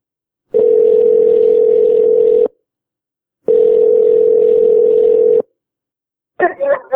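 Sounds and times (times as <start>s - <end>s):
long steady electronic phone ring tones on a call: 0.5s - 2.5s, 3.5s - 5.5s.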